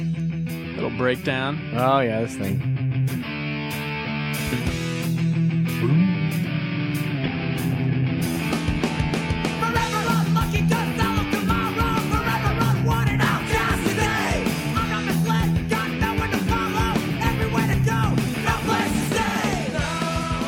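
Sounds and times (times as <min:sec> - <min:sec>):
loud dense gothy punk rock song with driving guitars and drums: 0:00.0 - 0:20.4
speech: 0:00.8 - 0:02.8, 0:05.8 - 0:06.1.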